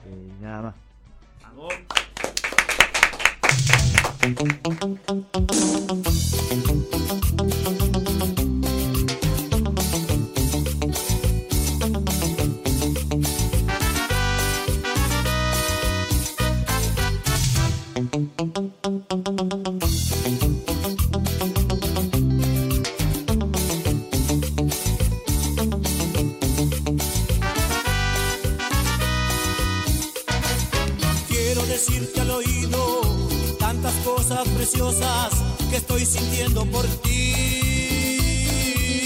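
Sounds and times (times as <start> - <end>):
speech: 0.1 - 2.0, 3.5 - 7.5
lively cumbia tune with bouncing percussion and bright melodic lines: 1.4 - 39.0
hand-clap accents: 1.7 - 5.3, 30.8 - 31.2.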